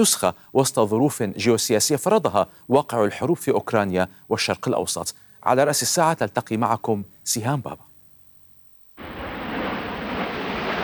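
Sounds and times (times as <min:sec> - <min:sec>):
speech: 0:00.0 - 0:07.9
Royal Air Force Red Arrows aerobatic jets passing overhead at Farnborough: 0:09.0 - 0:10.8.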